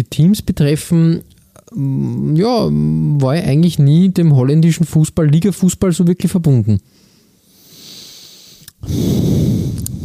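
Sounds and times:
speech: 0.2 - 7.0, 8.8 - 9.2
soft breathy inhale: 6.9 - 10.0
loud rough snorting exhale: 7.6 - 10.0.

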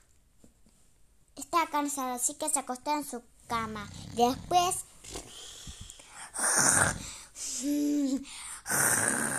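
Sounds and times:
speech: 1.7 - 5.2, 6.4 - 9.3
man snoring loudly: 6.4 - 7.2, 8.6 - 9.3.

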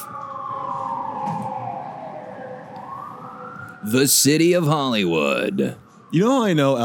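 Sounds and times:
ambulance siren wailing as it drives by in Los Angeles: 0.0 - 6.8
low hum of traffic: 0.0 - 6.8
speech: 3.8 - 6.8.

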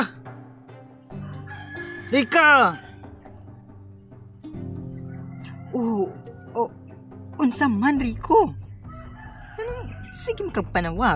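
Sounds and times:
chicken clucking and crowing in nasal calls: 1.2 - 2.2, 5.0 - 6.7, 8.9 - 10.2
speech: 2.1 - 2.9, 5.7 - 6.8, 7.4 - 8.6, 9.6 - 11.1.

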